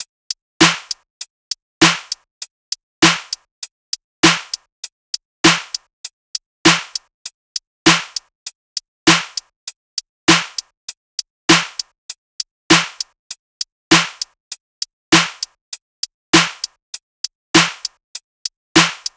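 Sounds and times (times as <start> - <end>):
drum loop: 0.6 - 1.0, 1.8 - 2.2, 3.0 - 3.5, 4.2 - 4.7, 5.4 - 5.8, 6.7 - 7.0, 7.9 - 8.3, 9.1 - 9.5, 10.3 - 10.7, 11.5 - 11.9, 12.7 - 13.2, 13.9 - 14.4, 15.1 - 15.6, 16.4 - 16.8, 17.6 - 18.0, 18.8 - 19.1.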